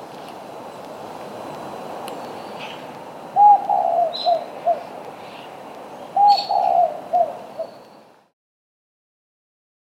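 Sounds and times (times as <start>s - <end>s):
spotted dove cooing: 3.4s - 5.0s, 6.1s - 7.8s.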